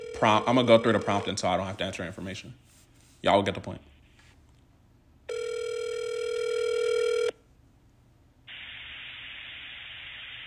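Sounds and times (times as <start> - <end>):
electronic phone ring tone over a speakerphone: 0.0 - 1.6, 5.3 - 7.4
speech: 0.2 - 3.9.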